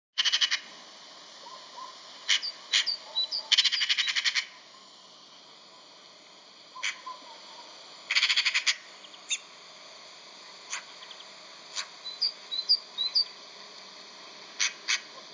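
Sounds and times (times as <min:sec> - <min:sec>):
magpie: 0:00.2 - 0:00.6, 0:01.8 - 0:04.5, 0:06.8 - 0:07.4, 0:08.1 - 0:09.4, 0:14.6 - 0:15.0.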